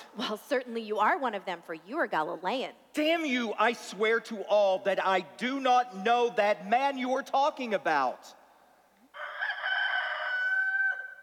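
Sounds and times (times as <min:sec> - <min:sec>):
speech: 0:00.2 - 0:08.4
rooster crowing: 0:09.2 - 0:11.2.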